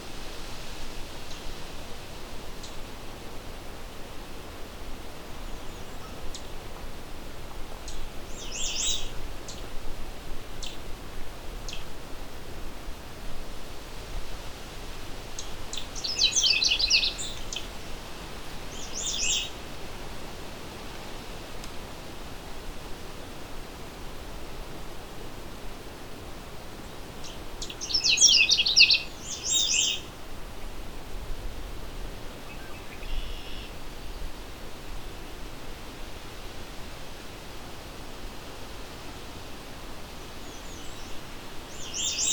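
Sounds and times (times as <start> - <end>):
steady hiss: 0.0 - 42.3
Canada Warbler singing warbly whistled phrases: 15.4 - 17.7, 18.7 - 19.5, 27.2 - 30.1, 40.4 - 42.3.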